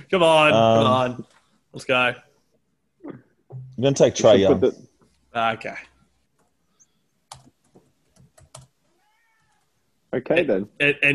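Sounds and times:
speech: 0.1s - 2.3s, 3.0s - 5.9s, 10.1s - 11.1s
quiet keyboard typing clicks: 7.3s - 7.6s, 8.2s - 8.7s.

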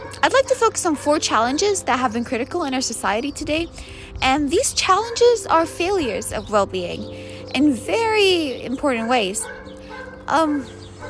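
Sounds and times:
speech: 0.2s - 9.6s, 10.3s - 11.0s
dog barking: 0.9s - 1.2s, 9.4s - 11.0s.

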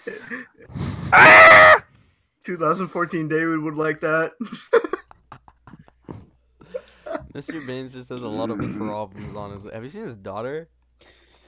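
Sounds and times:
speech: 0.0s - 1.3s, 2.5s - 4.9s, 7.4s - 11.2s
loud raspy strained scream: 1.1s - 1.9s.

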